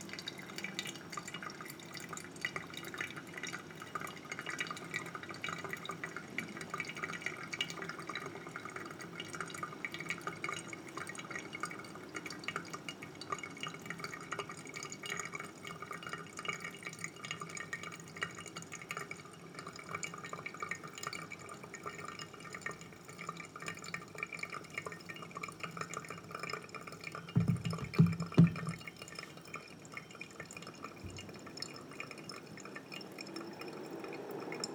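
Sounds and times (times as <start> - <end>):
fine dripping and trickling of pour-over coffee brewing: 0.0 - 34.7
steady dense patter of rain: 0.0 - 34.7
brief louder low thump: 27.4 - 28.8
small clicks and taps: 27.4 - 28.8.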